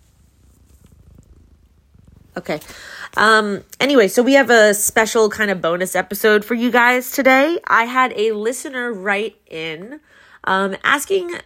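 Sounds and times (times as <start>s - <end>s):
cat purring next to a person: 0.0s - 3.8s
speech: 2.4s - 11.4s.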